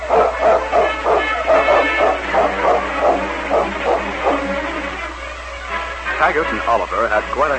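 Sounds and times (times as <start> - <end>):
low constant hum: 0.0 - 7.5
malamute running on a snowy trail barking: 0.1 - 4.5
speech: 6.3 - 7.5.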